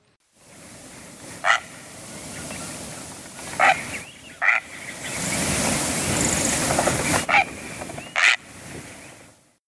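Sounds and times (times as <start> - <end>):
steady rushing background noise: 0.5 - 8.6
Great Blue Heron harsh hoarse squawks: 1.4 - 1.8, 3.4 - 5.2, 7.0 - 8.5.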